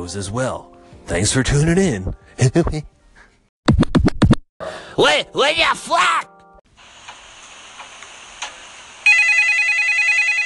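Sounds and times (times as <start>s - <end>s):
speech: 0.0s - 3.0s, 4.6s - 6.3s
telephone ringing with electronic trilling tones: 9.1s - 10.4s.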